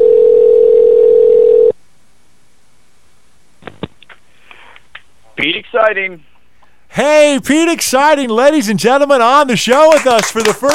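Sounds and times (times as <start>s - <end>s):
telephone dial tone: 0.0s - 1.7s
speech: 5.7s - 6.3s, 7.0s - 10.7s.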